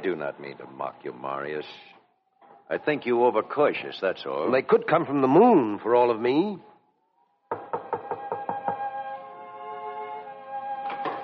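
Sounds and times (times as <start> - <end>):
speech: 0.0 - 2.0, 2.7 - 6.7
firm knocking on a door: 7.5 - 8.9.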